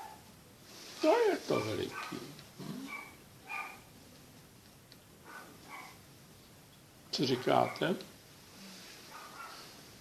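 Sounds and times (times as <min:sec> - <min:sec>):
dog barking: 0:00.0 - 0:00.2, 0:01.6 - 0:03.9, 0:05.2 - 0:06.0, 0:07.6 - 0:07.9, 0:09.1 - 0:09.7
steady hiss: 0:00.0 - 0:09.9
speech: 0:01.0 - 0:02.3, 0:07.2 - 0:08.1.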